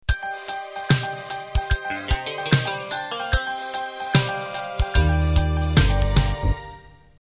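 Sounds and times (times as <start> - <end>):
swing rock hip-hop MIDI intro: 1.9 - 6.5.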